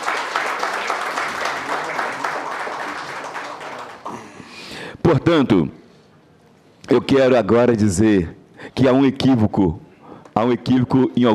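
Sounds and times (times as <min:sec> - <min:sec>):
sustained applause from a sizable crowd: 0:00.0 - 0:04.4
speech: 0:05.1 - 0:05.8, 0:06.9 - 0:09.8, 0:10.4 - 0:11.3.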